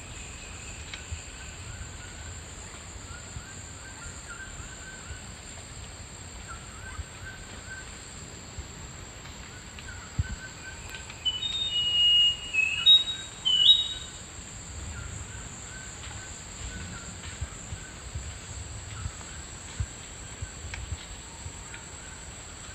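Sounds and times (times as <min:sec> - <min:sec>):
insect drone: 0:00.0 - 0:22.7
thrush-like schiffornis singing slurred whistles in the eastern lowlands of South America: 0:10.7 - 0:14.2.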